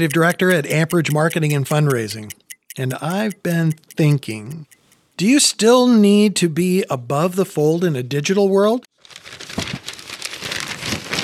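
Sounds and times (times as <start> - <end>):
speech: 0.0 - 9.6
newspaper pages rustling and crinkling: 8.9 - 11.2.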